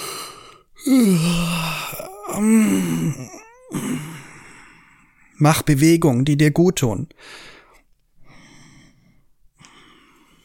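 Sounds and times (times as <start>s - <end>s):
person yawning with voiced moaning exhale: 0.8s - 4.4s
speech: 0.9s - 1.7s, 2.4s - 4.1s, 5.4s - 7.5s.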